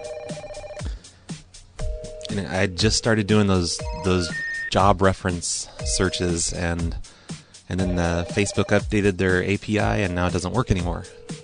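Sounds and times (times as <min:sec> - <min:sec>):
phone ringback tone on an outgoing call to a cell phone: 0:00.0 - 0:01.0, 0:01.8 - 0:04.7, 0:07.8 - 0:08.9, 0:10.4 - 0:11.4
soft rhythmic thumps: 0:00.0 - 0:04.1, 0:05.8 - 0:11.4
speech: 0:02.4 - 0:07.1, 0:07.7 - 0:11.2.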